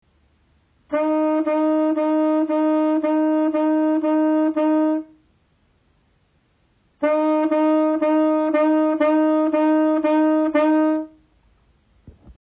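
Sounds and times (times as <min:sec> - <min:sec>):
tonguing on a wind instrument: 0:00.9 - 0:05.2, 0:07.0 - 0:11.2.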